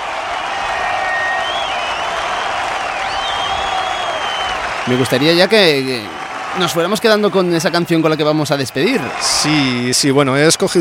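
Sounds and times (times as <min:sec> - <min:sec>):
sustained applause from a large outdoor festival audience: 0:00.0 - 0:10.8
scattered whistles from a festival audience: 0:00.7 - 0:05.2
speech: 0:04.9 - 0:10.8.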